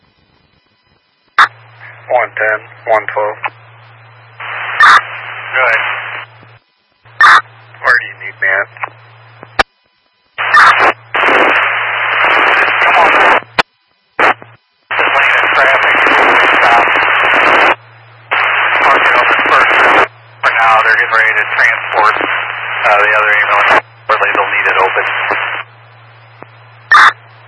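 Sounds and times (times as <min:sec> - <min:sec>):
steady low hum: 0:00.0 - 0:27.4
crackly band-limited radio static: 0:00.8 - 0:09.8, 0:10.4 - 0:27.4
garbled voice transmission: 0:01.4 - 0:03.6, 0:04.4 - 0:06.2, 0:07.2 - 0:09.0, 0:10.4 - 0:13.6, 0:14.2 - 0:25.6
speech: 0:02.1 - 0:03.6, 0:05.6 - 0:06.0.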